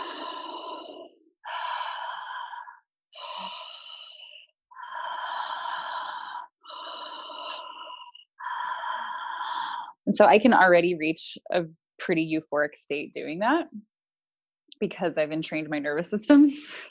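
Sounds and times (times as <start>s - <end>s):
connected breathing with rapid inhales and exhales: 0.0s - 10.0s
speech: 10.1s - 13.9s, 14.8s - 16.8s.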